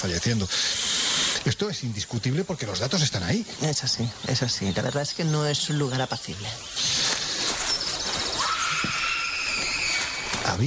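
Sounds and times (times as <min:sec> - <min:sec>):
speech: 0:00.0 - 0:07.0
steady hiss of noise: 0:00.0 - 0:10.6
faint high-pitched scream-like cry: 0:08.2 - 0:10.6.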